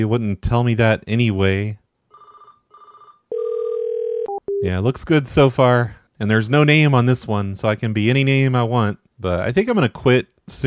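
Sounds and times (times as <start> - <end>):
speech: 0.0 - 1.8, 4.6 - 10.6
cell phone ringtone: 2.1 - 4.6.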